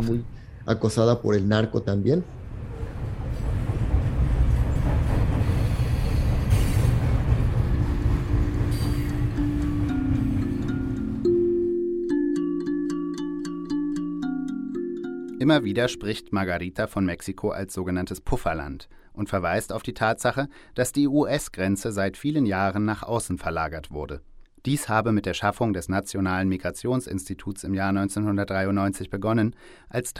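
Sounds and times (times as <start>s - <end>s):
speech: 0.0s - 2.4s, 15.4s - 30.1s
heavy freight train rumbling at night in Tierra Blanca Veracruz Mexico: 2.3s - 11.3s
sustained tones: 7.7s - 16.4s.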